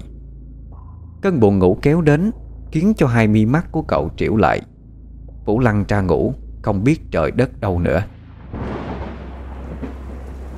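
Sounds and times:
speech: 0:01.2 - 0:04.7, 0:05.5 - 0:08.2
heavy rain at night: 0:08.5 - 0:10.5.

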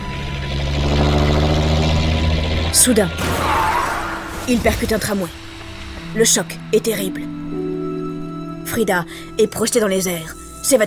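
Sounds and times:
coach engine droning speeding through city streets: 0:00.0 - 0:04.4
speech: 0:02.8 - 0:03.5, 0:04.5 - 0:05.5, 0:06.1 - 0:07.4, 0:08.6 - 0:10.8.

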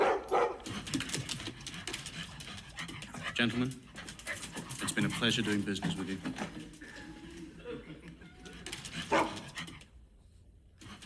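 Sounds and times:
dog barking: 0:00.0 - 0:00.7, 0:09.0 - 0:09.5
speech: 0:03.4 - 0:03.8, 0:05.0 - 0:07.0
laughter: 0:04.6 - 0:09.6.

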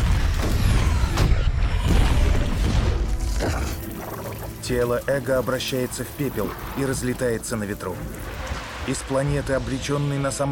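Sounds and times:
massive explosion roar and rumble: 0:00.0 - 0:03.6
speech: 0:04.7 - 0:10.5.

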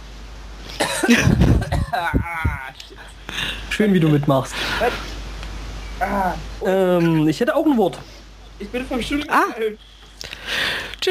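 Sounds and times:
person coughing at a board game evening: 0:00.8 - 0:02.2
speech: 0:01.1 - 0:05.1, 0:06.0 - 0:11.1.

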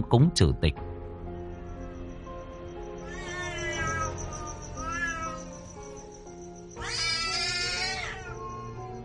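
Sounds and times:
low steady tonal background: 0:00.0 - 0:07.5
black cat meowing and yowling when attacked by surprise: 0:03.0 - 0:05.7, 0:06.8 - 0:09.0.

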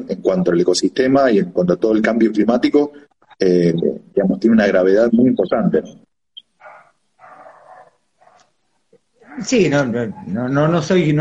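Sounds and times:
speech: 0:00.0 - 0:06.1, 0:09.4 - 0:11.2
female dog barking at home: 0:06.6 - 0:08.6, 0:09.2 - 0:10.5.

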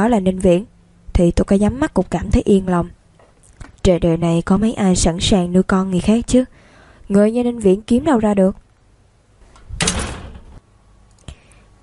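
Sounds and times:
speech: 0:00.0 - 0:03.0, 0:03.9 - 0:08.6
door closing thud: 0:09.6 - 0:10.6.

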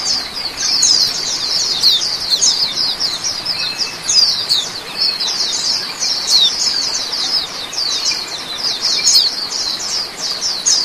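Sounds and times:
Oriental magpie-robin singing fast high scratchy twitters: 0:00.0 - 0:10.8.

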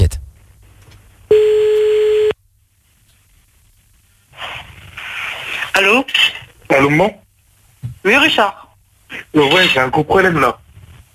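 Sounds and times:
ringback tone on an outgoing phone call: 0:01.3 - 0:02.3
speech: 0:06.7 - 0:07.2, 0:08.0 - 0:08.6, 0:09.3 - 0:10.6.

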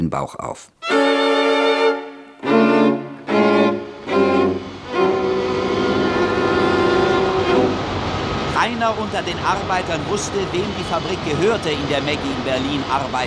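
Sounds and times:
speech: 0:00.0 - 0:01.4, 0:08.6 - 0:13.2
train whistle blasts at a station: 0:00.8 - 0:08.5
train arriving at a station, mechanical roar: 0:00.9 - 0:13.2.

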